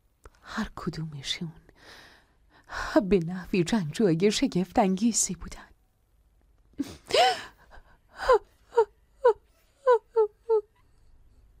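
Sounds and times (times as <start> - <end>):
speech: 0.6 - 2.0, 3.0 - 5.7
person crying and wailing: 6.8 - 10.7.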